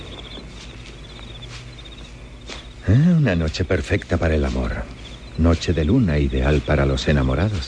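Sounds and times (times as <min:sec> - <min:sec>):
crickets chirping on a moonlit night among flower gardens: 0:00.0 - 0:07.6
low constant hum: 0:00.0 - 0:07.6
soft rustling: 0:00.0 - 0:07.6
speech: 0:02.9 - 0:07.6.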